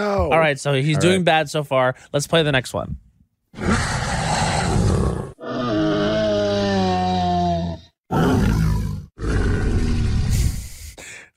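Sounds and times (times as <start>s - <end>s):
speech: 0.0s - 3.0s
Triceratops dinosaur roar and bellow film sound effect: 3.6s - 10.7s.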